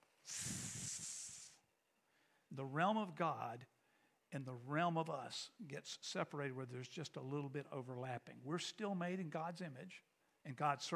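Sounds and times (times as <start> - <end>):
person hissing with their mouth imitating a snake: 0.2 - 1.6
speech: 2.5 - 10.9.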